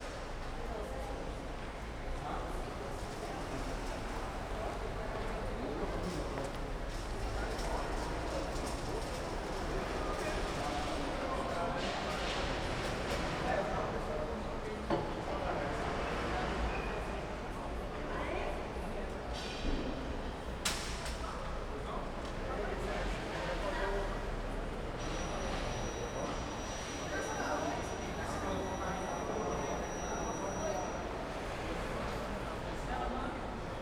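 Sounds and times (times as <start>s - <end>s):
people in a hat shop at Senado: 0.5s - 33.8s
audible alarm in a hat shop at Senado: 25.0s - 31.1s.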